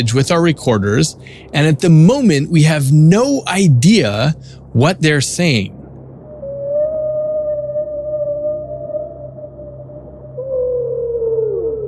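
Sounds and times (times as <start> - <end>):
speech: 0.0 - 5.8
whale vocalization with long low moaning call and wavering song: 6.2 - 11.8.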